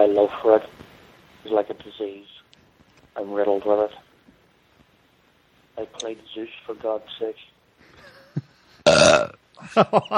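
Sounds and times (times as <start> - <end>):
speech: 0.0 - 0.8, 1.4 - 2.4, 3.2 - 4.1, 5.8 - 7.5, 8.4 - 10.1
loud burp: 8.8 - 9.4.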